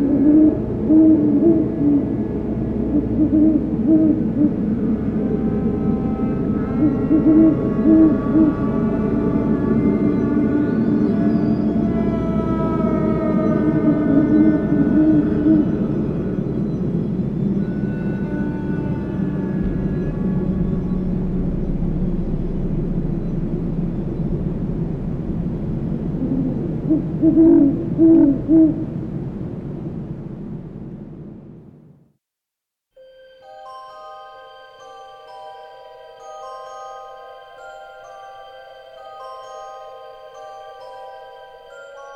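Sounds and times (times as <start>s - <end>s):
great horned owl hooting: 0.0s - 25.0s, 26.1s - 29.0s
steady low rumble: 0.0s - 32.0s.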